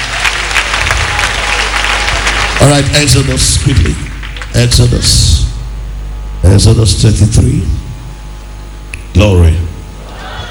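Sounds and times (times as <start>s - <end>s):
congregation clapping during a church service: 0.0s - 5.2s
speech: 2.6s - 5.4s, 6.4s - 7.8s, 9.2s - 9.6s.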